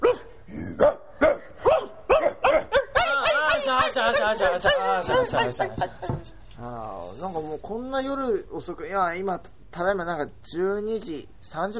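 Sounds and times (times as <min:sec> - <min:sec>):
dog barking at night at home: 0:00.0 - 0:05.7
laughter: 0:03.0 - 0:06.5
speech: 0:04.3 - 0:11.7.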